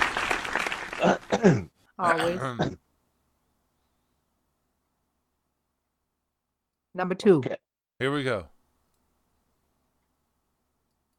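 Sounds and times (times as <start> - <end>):
brief burst of dense clapping: 0.0 - 1.3
speech: 1.0 - 2.8, 7.0 - 8.5
short spoken exclamation: 2.0 - 2.7.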